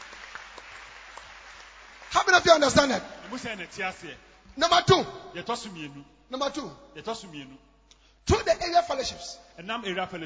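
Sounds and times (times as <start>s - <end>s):
crowd clapping: 0.0s - 4.6s
speech: 2.1s - 10.2s.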